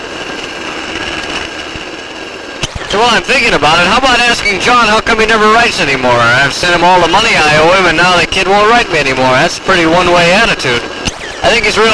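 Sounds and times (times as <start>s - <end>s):
helicopter warming up on a ship's deck: 0.0s - 11.9s
speech: 2.9s - 10.8s, 11.4s - 11.9s.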